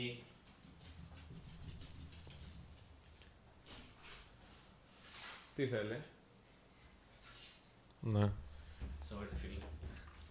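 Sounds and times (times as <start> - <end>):
speech: 0.0 - 0.3, 5.6 - 6.2, 8.0 - 10.2
dog paws tapping and shuffling: 0.1 - 5.6, 8.7 - 10.2.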